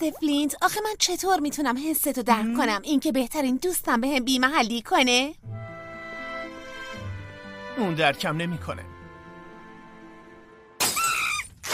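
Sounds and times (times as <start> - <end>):
speech: 0.0 - 5.6, 7.8 - 8.9
glass windows smashed at a house: 10.8 - 11.7.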